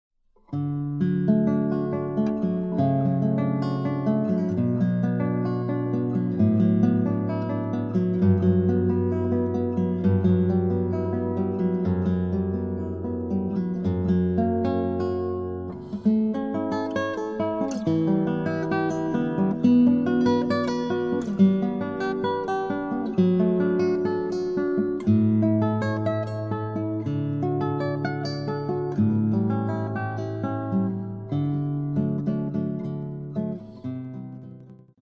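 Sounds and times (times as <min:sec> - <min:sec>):
floating guitar arpeggios: 0:00.5 - 0:34.9.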